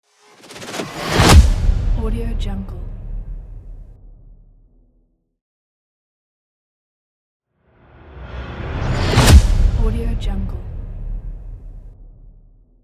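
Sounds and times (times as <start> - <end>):
futuristic impact: 0.2 - 4.9, 7.8 - 12.8.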